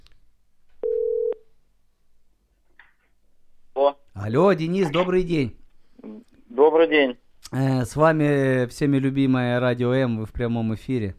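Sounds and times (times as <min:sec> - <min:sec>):
telephone ringback tone of an outgoing call: 0:00.8 - 0:01.4
speech: 0:04.3 - 0:05.6, 0:06.8 - 0:11.1.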